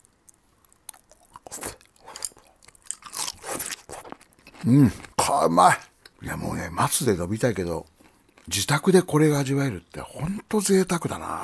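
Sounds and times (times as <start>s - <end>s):
chewing simmered bamboo shoot: 0.0s - 6.2s, 7.8s - 8.9s
speech: 4.6s - 7.9s, 8.5s - 11.4s.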